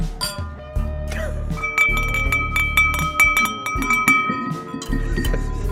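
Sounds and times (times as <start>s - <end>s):
thermos mug clinking against ceramic cup in a toast: 0.2s - 0.6s, 1.6s - 5.6s.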